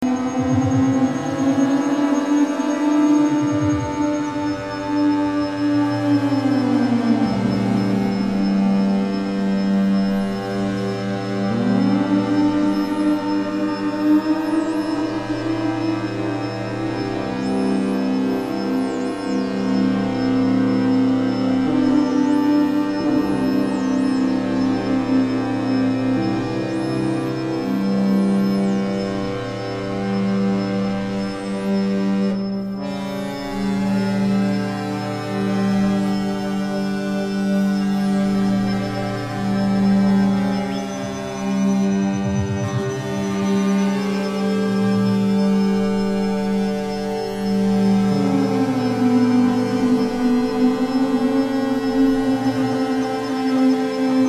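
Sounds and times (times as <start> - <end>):
string drone: 0.0 - 54.2.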